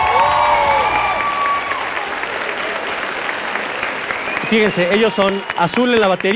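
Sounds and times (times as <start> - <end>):
crowd applauding a student rock band: 0.0 - 6.3
whistles from a crowd: 3.6 - 6.0
speech: 4.5 - 6.3.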